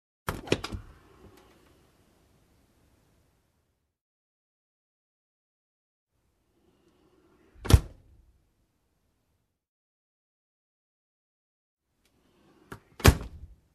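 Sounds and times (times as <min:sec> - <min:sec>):
old refrigerator door opening and closing: 0:00.3 - 0:01.3, 0:07.5 - 0:08.2, 0:12.4 - 0:13.6.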